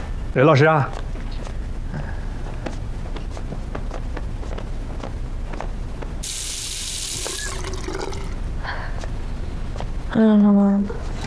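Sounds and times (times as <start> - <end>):
speech: 0.3 - 1.0, 10.1 - 11.1
tap water running while hands are washed: 6.2 - 8.4.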